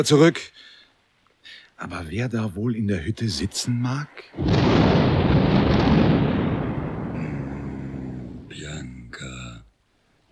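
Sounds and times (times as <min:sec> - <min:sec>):
speech: 0:00.0 - 0:00.7, 0:01.4 - 0:05.2
rolling thunder from an approaching thunderstorm: 0:04.4 - 0:08.6.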